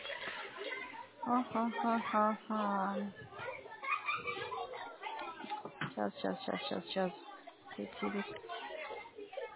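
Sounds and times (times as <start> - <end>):
children passing by chattering loudly: 0.0 - 9.5
speech: 1.3 - 3.3, 6.0 - 8.5.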